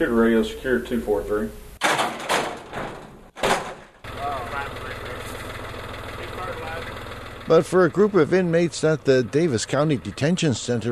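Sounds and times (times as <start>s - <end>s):
speech: 0.0s - 1.6s, 7.5s - 10.8s
loud broad clattering bursts: 1.8s - 4.0s
very used John Deere tractor engine idling: 3.8s - 10.8s.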